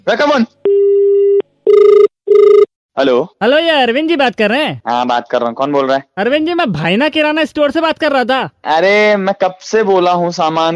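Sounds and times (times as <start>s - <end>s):
speech: 0.0s - 0.6s, 3.0s - 10.7s
steady electronic phone line tone: 0.6s - 2.7s.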